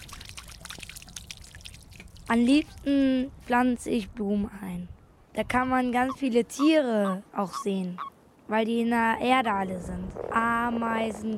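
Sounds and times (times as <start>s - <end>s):
water pouring onto garden soil: 0.0s - 2.4s
speech: 2.3s - 11.3s.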